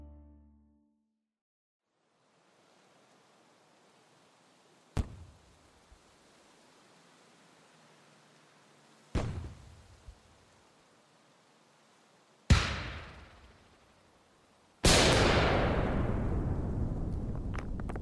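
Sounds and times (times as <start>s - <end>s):
grenade explosions: 12.5s - 13.5s, 14.8s - 18.0s.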